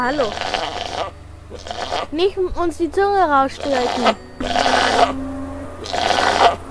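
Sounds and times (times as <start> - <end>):
goat with long beard and large horns bleating: 0.0 - 2.2, 3.5 - 6.6
speech: 0.0 - 5.3
quiet hum: 0.0 - 6.6.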